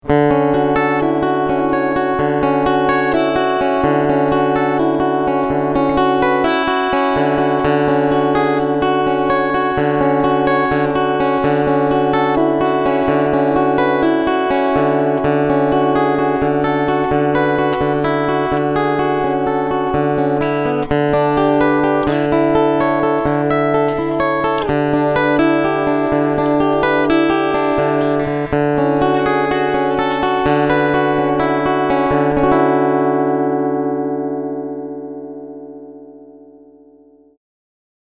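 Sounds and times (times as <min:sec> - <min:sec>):
guitar picking line: 0:00.0 - 0:37.3.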